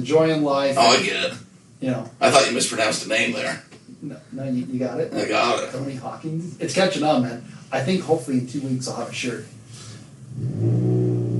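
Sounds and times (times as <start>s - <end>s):
speech: 0.0s - 9.6s, 10.4s - 11.0s
car engine revving: 10.3s - 11.3s.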